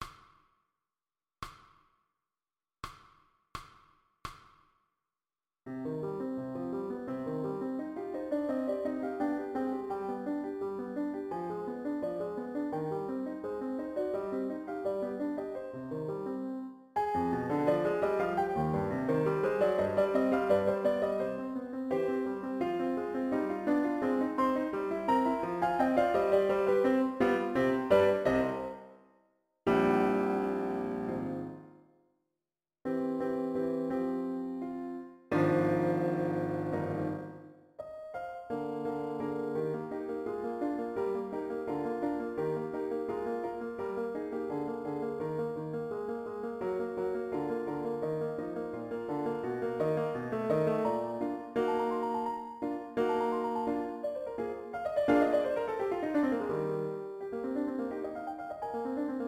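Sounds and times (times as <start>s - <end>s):
flute and piano backing of a classical sonata movement: 5.7s - 29.0s, 29.7s - 31.8s, 32.9s - 59.2s.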